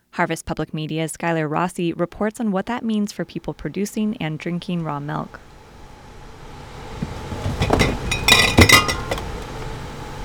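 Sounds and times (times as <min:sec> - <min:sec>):
speech: 0:00.2 - 0:05.5
glass milk jars clinking while pulled out: 0:07.1 - 0:09.5.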